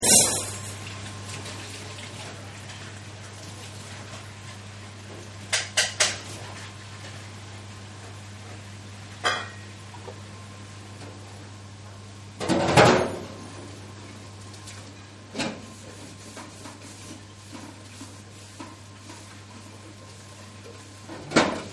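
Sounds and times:
household dishwasher running: 0.0 - 7.2, 12.4 - 21.7.

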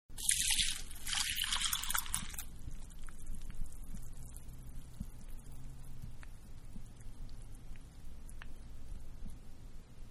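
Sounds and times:
milk pouring onto cereal: 0.2 - 7.8.

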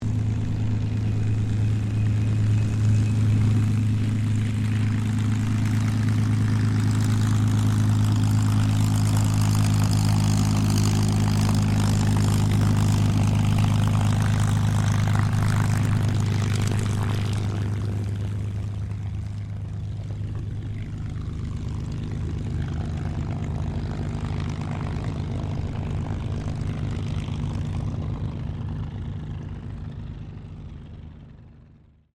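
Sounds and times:
CAC CA-18 Mustang aircraft taxiing: 0.0 - 32.1.

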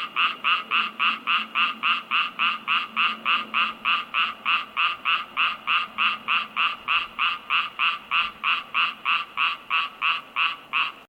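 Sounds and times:
frog croaking in an unused swimming pool: 0.0 - 11.0.

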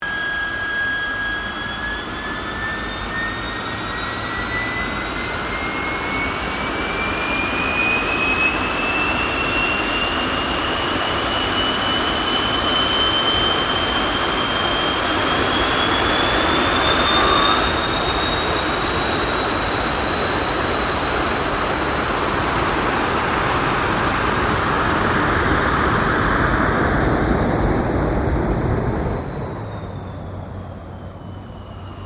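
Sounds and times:
Gloster Meteor F Mk8 fighter jet taxiing: 0.0 - 32.0.

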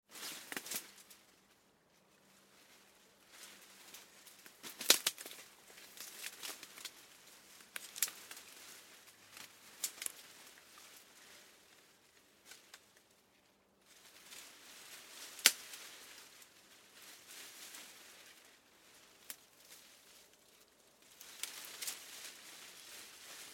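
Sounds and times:
leaves moving: 0.1 - 13.2, 13.8 - 23.5
footsteps snapping twigs: 0.2 - 1.2, 3.4 - 11.0, 12.4 - 13.1, 15.1 - 16.5, 19.2 - 19.9, 20.5 - 23.5.

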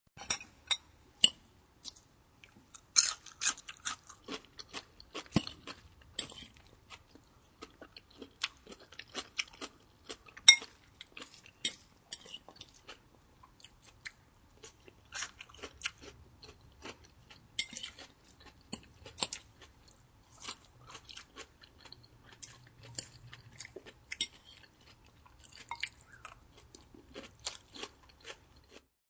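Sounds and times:
person eating salad: 1.2 - 28.9.

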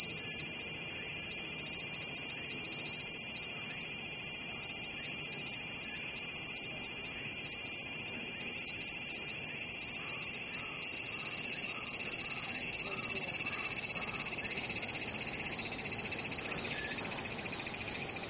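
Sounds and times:
cicada call in a cemetery in Tokyo Japan: 0.0 - 18.2.

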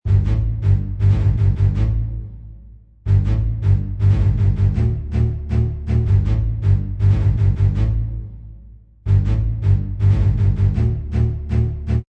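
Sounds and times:
staccato orchestral bass string loop: 0.0 - 12.0.

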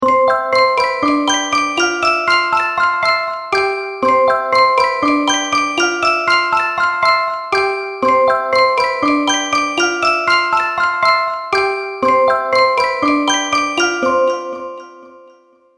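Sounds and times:
music box toy melody: 0.0 - 15.7.

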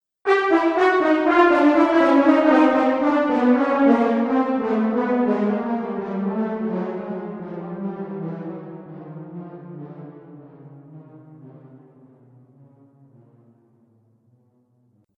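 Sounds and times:
cartoon failure brass with delay: 0.3 - 8.4.

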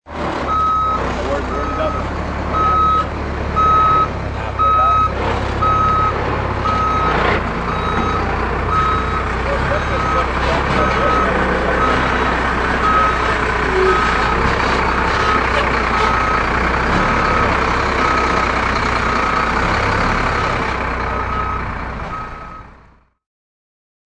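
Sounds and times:
dump truck engine backing up: 0.0 - 23.2
dump truck reversing beeps: 0.5 - 12.2, 12.8 - 14.4, 15.2 - 16.4, 20.3 - 22.7.

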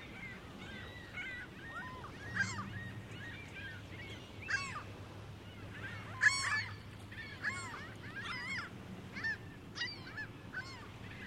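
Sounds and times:
gulls crying at Lake Ontario: 0.0 - 11.2.

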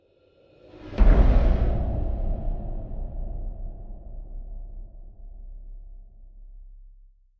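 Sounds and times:
deep airy breathy horror trailer whoosh impact: 0.8 - 6.4.

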